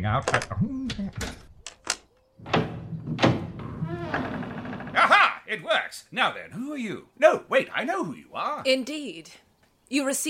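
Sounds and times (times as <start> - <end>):
speech: 0.0 - 1.4, 5.5 - 10.2
door swinging open: 1.1 - 5.1.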